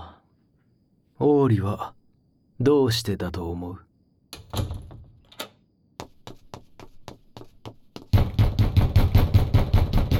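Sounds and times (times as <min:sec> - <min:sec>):
speech: 0:01.2 - 0:02.0, 0:02.6 - 0:03.9
locked door rattling and banging against its frame: 0:04.4 - 0:05.5, 0:08.1 - 0:10.1
sharp knocks on a locked door: 0:06.0 - 0:10.1.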